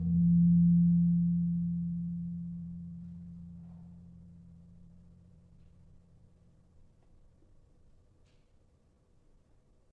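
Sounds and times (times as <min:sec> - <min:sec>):
tuned gamelan gong in F sharp: 0:00.0 - 0:04.4.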